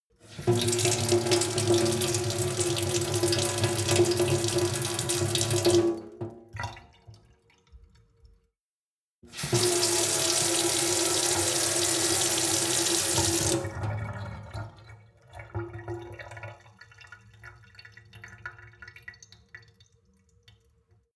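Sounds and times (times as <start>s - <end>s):
sink water flow with medium seep: 0.2s - 8.5s, 9.3s - 21.1s.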